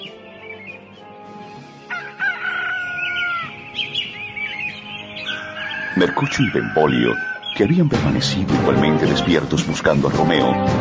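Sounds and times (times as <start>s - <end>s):
chorus of birds chirping in the morning in fields near Verona: 0.0s - 10.6s
rooster crowing in fields near Verona: 1.9s - 3.6s, 5.2s - 7.4s
speech: 6.0s - 10.7s.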